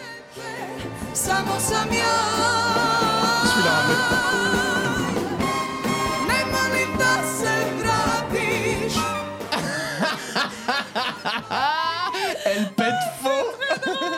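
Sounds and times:
live orchestra playing a song's chorus full and loud: 1.2s - 9.6s
laughter: 9.5s - 14.1s.

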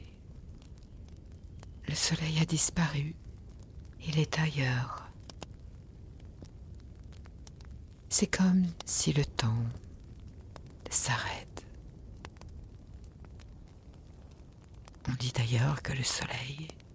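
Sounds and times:
wood fire crackling with sharp pops: 0.0s - 16.9s
hushed whispering voice: 1.8s - 3.2s, 4.0s - 5.2s, 8.1s - 9.8s, 10.9s - 11.7s, 15.1s - 16.8s
speech: 1.9s - 3.3s, 4.0s - 5.0s, 8.2s - 9.8s, 10.9s - 11.5s, 15.2s - 16.8s.

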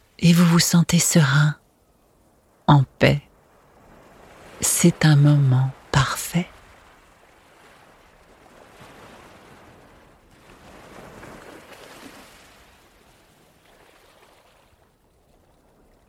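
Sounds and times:
ocean waves washing onto a fine sand beach: 0.0s - 16.0s
speech: 0.2s - 1.6s, 2.7s - 3.3s, 4.6s - 6.5s.

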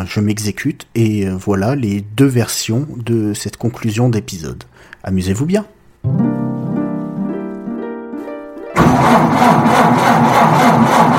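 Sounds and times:
speech: 0.0s - 6.3s, 9.3s - 11.1s
car engine struggling to start with pulsing cranking whine: 8.8s - 11.1s.

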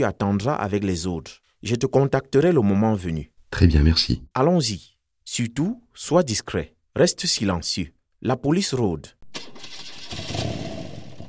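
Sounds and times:
speech: 0.0s - 10.3s
motorcycle engine cranking and idling: 9.3s - 11.2s.

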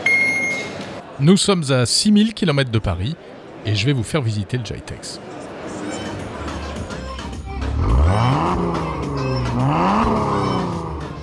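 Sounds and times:
speech: 1.2s - 5.3s
powerful car engine revving: 7.5s - 11.2s.

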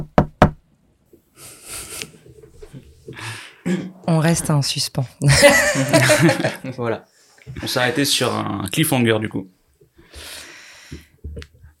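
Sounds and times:
sharp knocks on a bedroom door: 0.0s - 0.6s
speech: 3.7s - 9.6s
laughter: 5.3s - 6.9s.

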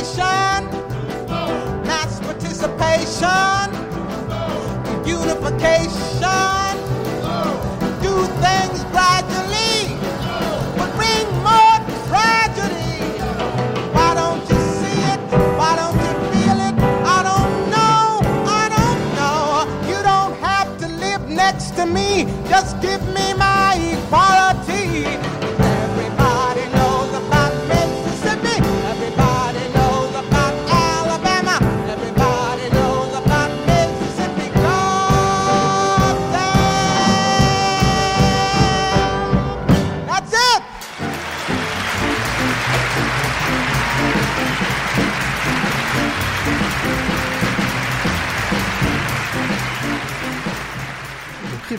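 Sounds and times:
live musical performance with rhythmic accompaniment at Carnegie Hall in New York: 0.0s - 51.7s
speech: 5.1s - 6.5s
large audience applauding: 8.6s - 15.2s, 40.6s - 51.7s.

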